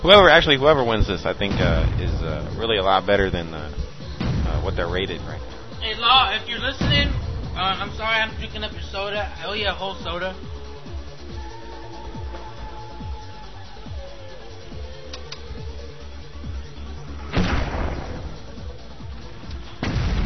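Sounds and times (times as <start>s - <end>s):
speech: 0.0s - 3.9s, 4.5s - 10.5s
grenade explosions in a video game: 0.2s - 9.0s, 17.2s - 20.2s.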